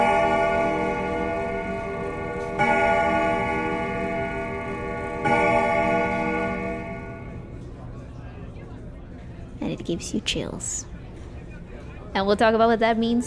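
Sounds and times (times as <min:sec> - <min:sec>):
grandfather clock striking resonant chimes: 0:00.0 - 0:07.6
speech: 0:09.9 - 0:10.9, 0:12.2 - 0:13.2.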